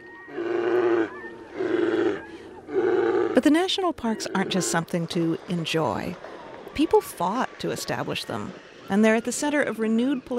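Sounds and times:
grizzly bears roaring while fighting over wild salmon in Denali National Park Alaska: 0:00.0 - 0:05.1
speech: 0:03.4 - 0:06.2, 0:06.8 - 0:10.3.

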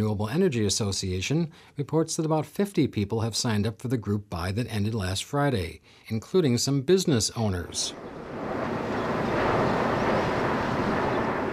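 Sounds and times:
speech: 0:00.0 - 0:08.3
airplane passing low overhead: 0:07.7 - 0:11.5.

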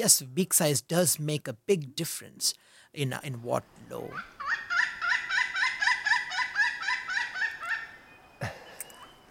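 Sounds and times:
speech: 0:00.0 - 0:04.7
pileated woodpecker laughing call: 0:04.1 - 0:09.1.

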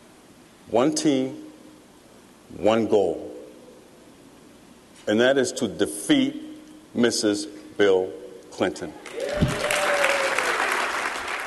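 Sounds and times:
speech: 0:00.7 - 0:01.4, 0:02.5 - 0:03.3, 0:05.0 - 0:09.6
audience applause at a political convention: 0:09.0 - 0:11.4.

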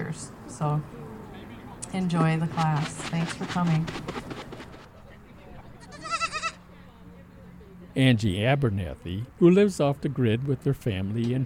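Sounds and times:
speech: 0:00.2 - 0:01.0, 0:01.9 - 0:04.3, 0:08.0 - 0:11.4
miniature Nigerian dwarf goat bleating: 0:05.8 - 0:06.6.

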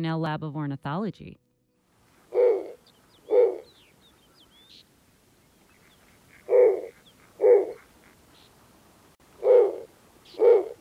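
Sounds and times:
speech: 0:00.0 - 0:01.4
snowy owl low raspy hoots: 0:02.2 - 0:04.5, 0:05.8 - 0:08.2, 0:09.4 - 0:10.7
faint chirps of other birds: 0:02.3 - 0:08.6.

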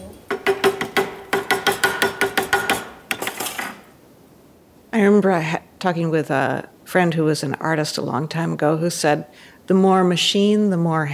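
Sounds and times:
hammer strikes on metal: 0:00.3 - 0:03.9
speech: 0:05.0 - 0:11.1.

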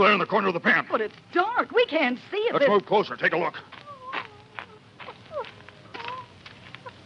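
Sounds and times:
speech: 0:00.0 - 0:03.8
soft scuffling: 0:03.5 - 0:07.0
dog whining in a pen in the dark: 0:03.9 - 0:06.4.

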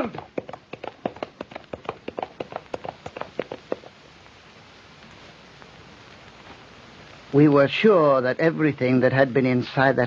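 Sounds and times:
horse hooves galloping over hard ground: 0:00.0 - 0:04.0
speech: 0:07.3 - 0:10.0.

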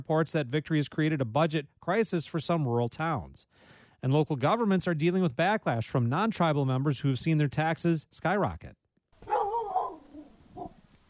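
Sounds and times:
speech: 0:00.0 - 0:08.8
black Labrador pit bull mix dog barking at the door of a home: 0:09.2 - 0:10.8.

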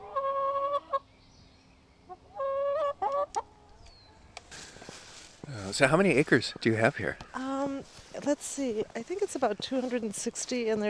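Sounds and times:
chickens squawking near a farmhouse in southeastern Wisconsin: 0:00.0 - 0:01.1, 0:02.0 - 0:04.2
speech: 0:05.7 - 0:07.3, 0:08.2 - 0:10.8.

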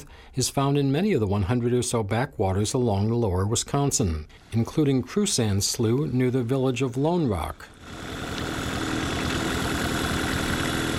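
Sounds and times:
speech: 0:00.0 - 0:08.2
small boat motor idling on Crusand Slough, lower Wisconsin River backwater: 0:07.7 - 0:10.9.

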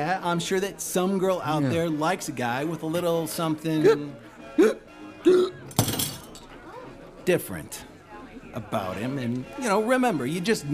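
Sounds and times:
speech: 0:00.0 - 0:05.6, 0:07.2 - 0:07.9, 0:08.5 - 0:10.7
nervous man hiccuping: 0:04.6 - 0:05.7.

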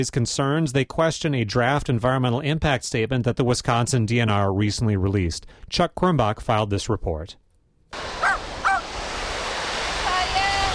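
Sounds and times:
speech: 0:00.0 - 0:08.1
lakeside surf washing on a beach: 0:08.0 - 0:10.7
crow cawing: 0:08.2 - 0:08.8
faint bird calls: 0:08.2 - 0:08.8.

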